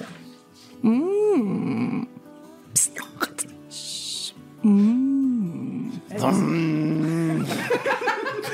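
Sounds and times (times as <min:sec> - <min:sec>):
speech: 0:00.8 - 0:01.7, 0:02.8 - 0:03.8
voice imitating a coffee machine starting up: 0:00.8 - 0:02.2, 0:02.8 - 0:07.5
mouth clicks: 0:02.8 - 0:05.1
laughter: 0:07.0 - 0:08.5.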